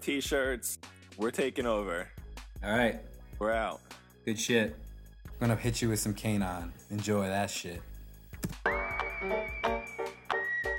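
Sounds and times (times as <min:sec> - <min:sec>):
speech: 0:00.0 - 0:04.8, 0:05.4 - 0:09.6
clear whistled tone: 0:08.6 - 0:10.7.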